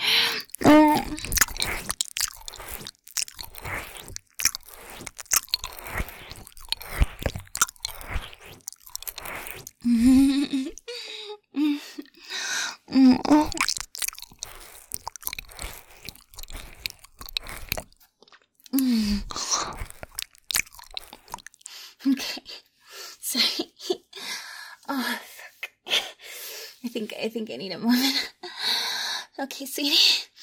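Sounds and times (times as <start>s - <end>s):
wet licking and slurping mouth sounds: 0.0s - 10.9s, 13.2s - 21.9s
soft breaths and small gasps: 0.0s - 18.0s, 18.7s - 26.9s, 27.9s - 30.4s
speech: 27.4s - 28.3s, 29.5s - 30.3s.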